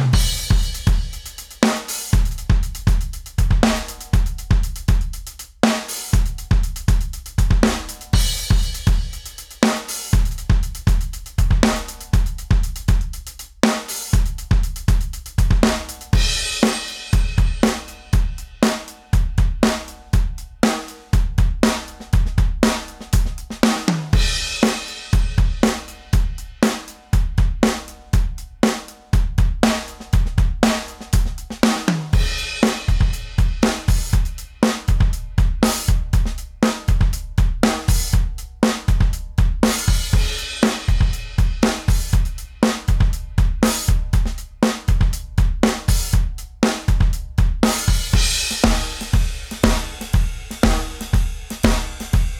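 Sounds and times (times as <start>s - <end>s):
bassline beats: 0.1s - 5.4s, 6.1s - 13.6s, 14.1s - 52.3s.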